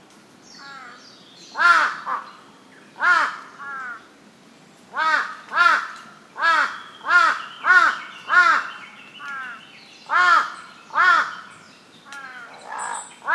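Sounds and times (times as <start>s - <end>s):
large-billed crow uttering loud rough caws: 1.6s - 2.3s, 3.0s - 4.0s, 5.0s - 11.4s, 12.1s - 13.3s.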